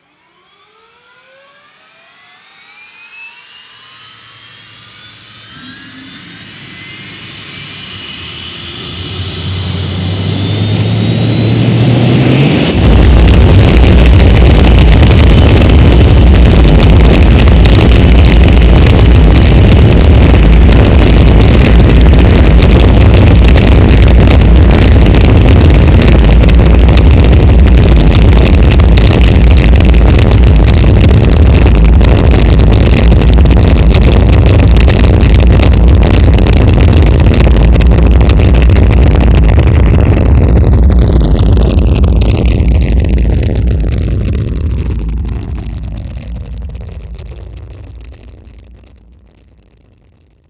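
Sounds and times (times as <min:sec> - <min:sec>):
rocket launch: 0:00.0 - 0:50.4.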